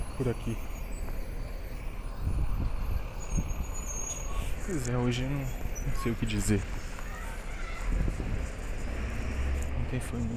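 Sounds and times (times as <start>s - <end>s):
heavy bus passing with deep engine drone: 0.0s - 10.3s
speech: 0.2s - 0.8s, 4.7s - 6.8s, 9.9s - 10.3s
bus air brakes hissing: 0.6s - 4.7s.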